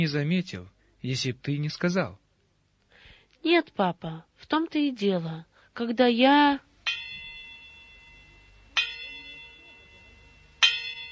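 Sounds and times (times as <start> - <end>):
speech: 0.0 - 2.2, 3.4 - 6.7
precious clock chime striking five o'clock: 6.8 - 11.0.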